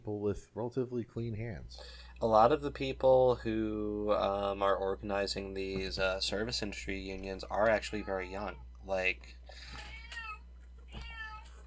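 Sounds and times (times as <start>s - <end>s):
speech: 0.0s - 9.8s
male cat meowing: 9.7s - 11.6s.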